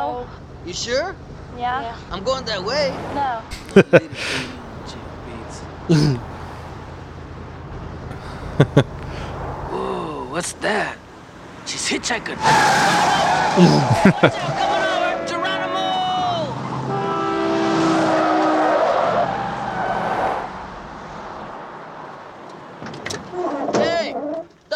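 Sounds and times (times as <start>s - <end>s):
car tires skidding to a halt: 0.0s - 24.7s
speech: 0.2s - 4.6s, 5.9s - 6.3s, 8.6s - 9.0s, 10.4s - 11.0s, 11.7s - 14.7s
laughter: 3.6s - 4.6s, 5.9s - 6.2s, 8.1s - 9.0s, 13.3s - 15.4s.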